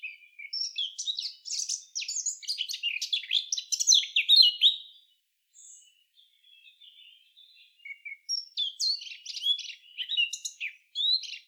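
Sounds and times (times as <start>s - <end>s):
Eurasian blackcap Sylvia atricapilla song: 0.0s - 11.4s.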